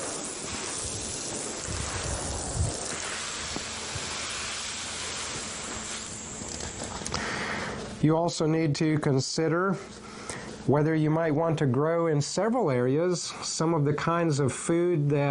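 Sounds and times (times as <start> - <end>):
watering can sprinkling water onto soil: 0.0 - 7.1
speech: 8.0 - 15.2.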